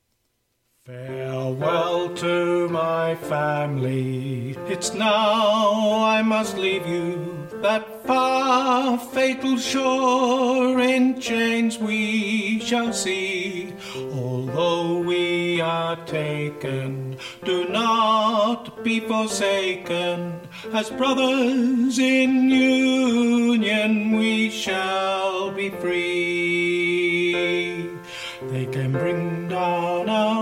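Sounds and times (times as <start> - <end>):
tenor singing: 0.8 - 30.4.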